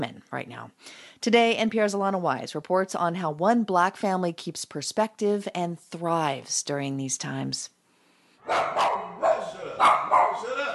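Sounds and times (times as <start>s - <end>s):
speech: 0.0s - 7.8s, 8.5s - 10.7s
small fluffy white dog barking: 8.5s - 10.5s.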